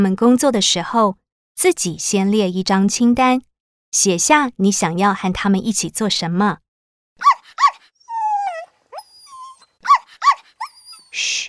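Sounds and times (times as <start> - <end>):
speech: 0.0 - 6.6
dog giving high yelping barks: 8.1 - 9.6, 10.6 - 11.4.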